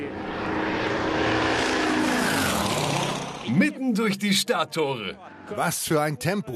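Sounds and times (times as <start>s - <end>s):
drone propellers buzzing over a race track: 0.0s - 4.5s
speech: 3.6s - 6.5s.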